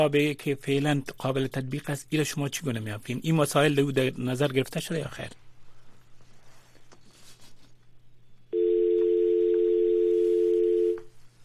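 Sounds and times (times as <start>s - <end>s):
speech: 0.0s - 5.4s
quiet telephone line noise with a low hum: 8.5s - 11.1s
telephone dial tone after call disconnects: 8.5s - 11.1s.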